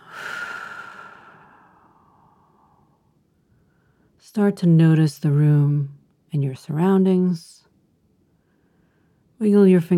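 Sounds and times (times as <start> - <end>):
slow exhaled breath during a relaxation exercise: 0.0 - 4.1
speech: 4.3 - 7.6, 9.4 - 9.9.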